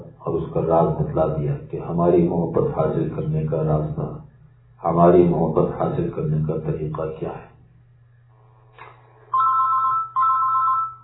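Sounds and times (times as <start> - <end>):
low hum: 0.0 - 11.0
speech: 0.4 - 4.2, 4.8 - 7.5
electronic phone ringtone: 9.3 - 11.0.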